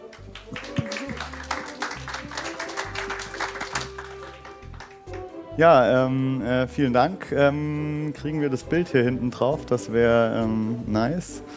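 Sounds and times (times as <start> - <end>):
crowd applause for a speaker: 0.0 - 5.3
speech: 5.6 - 11.5.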